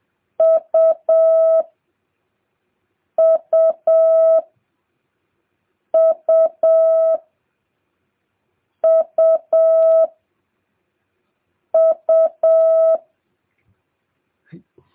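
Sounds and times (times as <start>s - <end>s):
Morse code letter U as mid-pitched tone: 0.4s - 1.6s, 3.2s - 4.4s, 6.0s - 7.2s, 8.8s - 10.1s, 11.8s - 13.0s.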